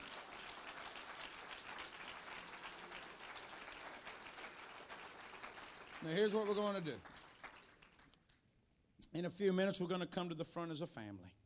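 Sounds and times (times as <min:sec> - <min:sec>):
crowd of people applauding: 0:00.0 - 0:08.2
speech: 0:06.0 - 0:07.2, 0:09.1 - 0:11.4.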